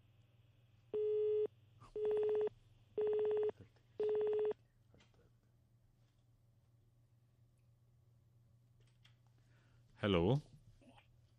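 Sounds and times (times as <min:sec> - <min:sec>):
telephone busy tone after a call drops: 0:01.0 - 0:04.6
speech: 0:10.0 - 0:10.5.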